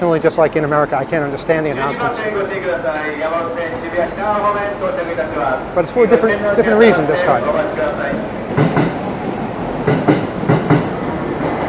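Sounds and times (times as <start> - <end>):
speech: 0.0 - 8.9
subway train rolling into the station: 0.0 - 11.6
subway train wheels clacking over rail joints: 5.2 - 11.6.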